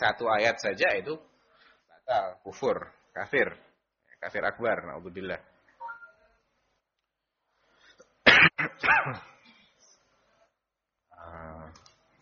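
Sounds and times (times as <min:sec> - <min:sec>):
speech: 0:00.0 - 0:01.3, 0:02.1 - 0:05.5, 0:08.8 - 0:09.3
man coughing during a religious lecture: 0:08.3 - 0:09.6.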